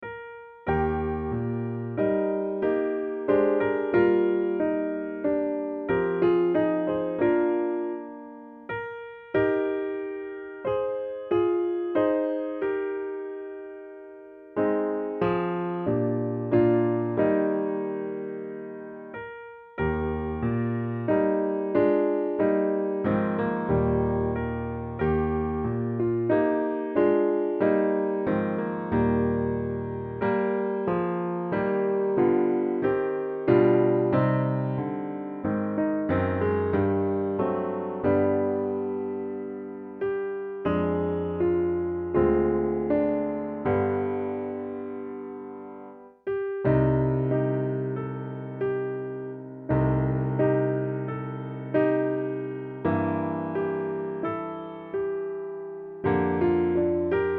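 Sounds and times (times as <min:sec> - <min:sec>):
piano accompaniment in E flat: 0:00.0 - 0:57.3.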